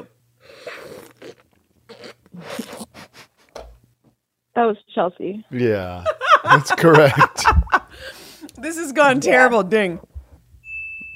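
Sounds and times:
person slurping coffee: 0.5 - 3.1
speech: 4.6 - 7.6, 8.6 - 10.1
laughter: 5.9 - 8.0.

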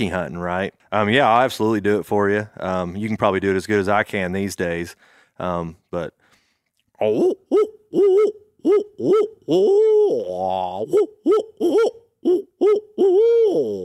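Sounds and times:
speech: 0.0 - 6.2, 7.0 - 13.8
voice imitating owl hoots by mouth as a turkey-hunting locator call: 7.0 - 13.8.

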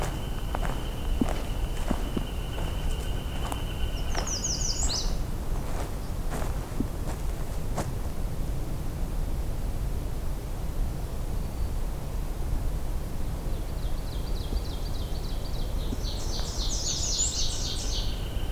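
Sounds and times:
ovenbirds singing ringing two-note phrases: 0.0 - 6.5, 13.9 - 18.5
steady outdoor hiss: 0.0 - 18.5.

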